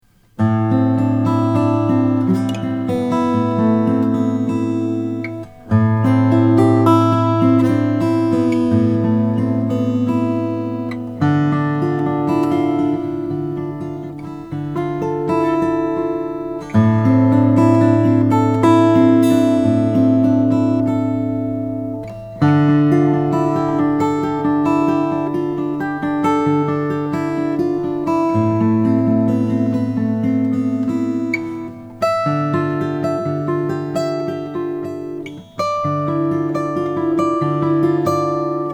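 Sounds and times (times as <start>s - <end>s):
Maingard cutaway acoustic guitar of Brazilian rosewood: 0.0s - 38.7s.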